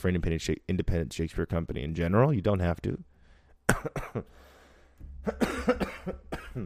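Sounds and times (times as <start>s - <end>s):
speech: 0.0s - 3.1s, 3.7s - 4.5s, 5.2s - 6.6s
cannabis coughing fit: 3.7s - 4.3s, 5.3s - 6.6s
throat clearing: 5.3s - 6.6s.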